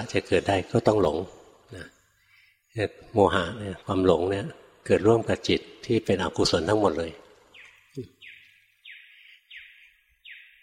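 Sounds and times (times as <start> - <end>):
speech: 0.0 - 2.0, 2.8 - 7.2, 8.0 - 8.2
bird whistling downward-sliding notes: 7.5 - 10.6.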